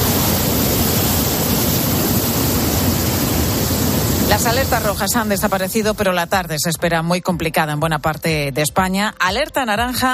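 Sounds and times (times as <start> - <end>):
swollen river rushing past: 0.0 - 5.8
speech: 4.4 - 10.1.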